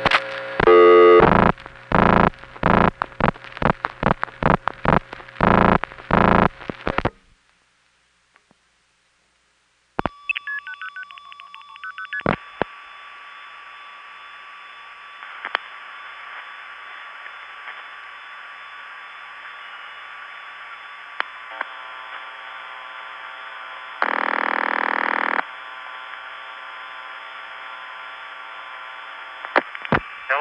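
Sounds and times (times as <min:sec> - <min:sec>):
steady humming telephone line: 0:00.6 - 0:03.0, 0:03.6 - 0:07.0, 0:10.0 - 0:18.9, 0:23.9 - 0:25.5
louder telephone tone burst: 0:00.6 - 0:07.1, 0:24.0 - 0:25.5
quick dialing tones through step-by-step switching exchanges: 0:00.6 - 0:07.1, 0:10.0 - 0:12.4, 0:24.0 - 0:25.4.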